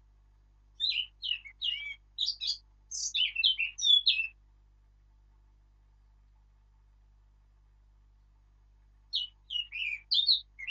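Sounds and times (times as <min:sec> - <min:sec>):
Eurasian blackcap song: 0:00.8 - 0:04.4, 0:09.1 - 0:10.6.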